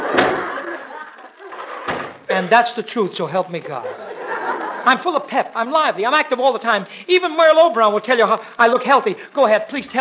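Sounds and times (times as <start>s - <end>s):
door pushed shut with a thud and rattle: 0.0s - 0.7s, 1.8s - 2.3s
laughter: 0.0s - 2.8s, 3.4s - 5.4s
speech: 2.4s - 4.0s, 4.8s - 9.9s.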